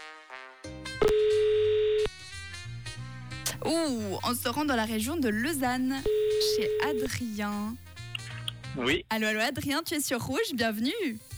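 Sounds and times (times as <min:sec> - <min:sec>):
telephone dial tone as a call is placed: 0:01.0 - 0:02.1, 0:06.0 - 0:07.1
speech: 0:03.6 - 0:07.9, 0:08.8 - 0:11.3.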